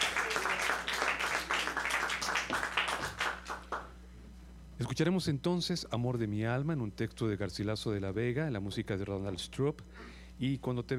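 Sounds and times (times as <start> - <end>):
auditorium audience applauding a university choir: 0.0 - 3.9
speech: 4.8 - 10.9.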